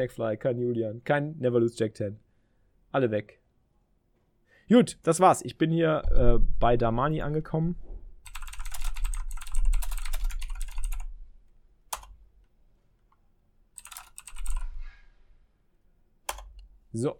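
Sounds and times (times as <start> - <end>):
speech: 0.0 - 2.2, 2.9 - 3.4, 4.7 - 7.9, 17.0 - 17.1
fast typing on a computer keyboard: 8.2 - 11.1, 11.9 - 12.2, 13.8 - 14.8, 16.3 - 16.6.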